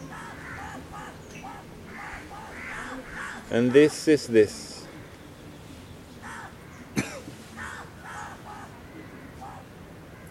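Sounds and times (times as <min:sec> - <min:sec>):
crow cawing: 0:00.0 - 0:04.1, 0:06.2 - 0:10.3
steady rush of noise: 0:00.0 - 0:10.3
speech: 0:03.5 - 0:04.7.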